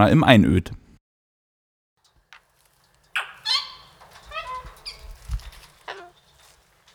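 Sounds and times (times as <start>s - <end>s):
speech: 0.0s - 0.8s
birds honking and squawking in a bird park in Ortenburg: 2.8s - 6.9s.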